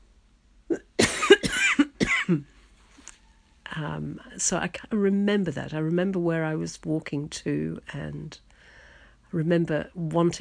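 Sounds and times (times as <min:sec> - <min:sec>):
person coughing harshly: 0:00.7 - 0:02.5
speech: 0:02.3 - 0:02.6, 0:03.8 - 0:08.5, 0:09.3 - 0:10.3.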